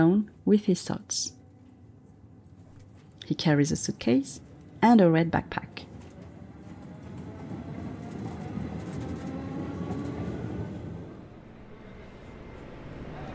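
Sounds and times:
speech: 0.0 - 1.4, 3.3 - 5.8
RER commuter train rolling along rails heard from inside the carriage: 5.4 - 13.3.

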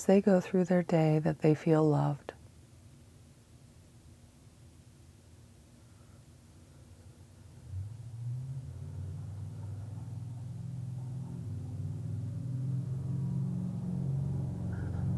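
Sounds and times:
speech: 0.0 - 2.3
heavy truck engine rumbling outside: 7.6 - 15.1.

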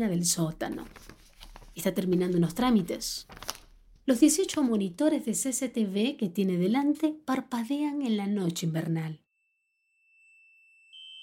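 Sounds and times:
speech: 0.0 - 1.2, 1.8 - 9.2
shrill electronic security alarm tone: 9.3 - 11.2.

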